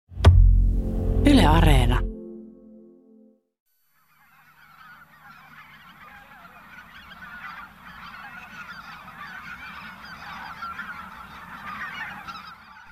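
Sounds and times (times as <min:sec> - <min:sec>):
brief tonal intro: 0:00.1 - 0:03.4
speech: 0:01.5 - 0:02.1
large flock of greater white-fronted geese honking: 0:04.1 - 0:12.9.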